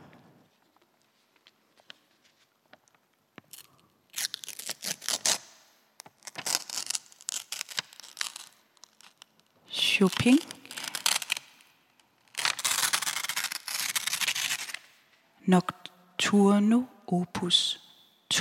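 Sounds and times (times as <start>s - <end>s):
sheet music paper being torn: 4.2s - 9.4s, 10.1s - 11.6s, 12.2s - 14.9s
speech: 10.0s - 10.5s, 15.5s - 18.3s.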